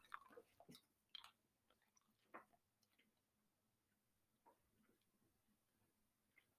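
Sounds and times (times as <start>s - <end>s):
chewing black licorice candy: 0.0s - 3.4s.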